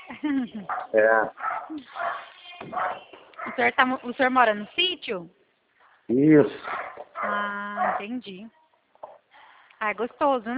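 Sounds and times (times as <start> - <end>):
speech: 0.2 - 5.4, 6.1 - 8.6, 9.8 - 10.5
dog barking with whiny yelps: 0.6 - 3.8, 6.6 - 8.2.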